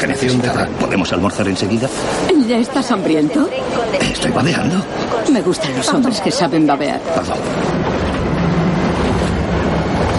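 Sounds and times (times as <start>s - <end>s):
speech: 0.0s - 8.2s
train rolling on rails heard from inside a carriage: 0.0s - 10.1s
faint clickety-clack of train wheels on rails: 7.6s - 10.1s.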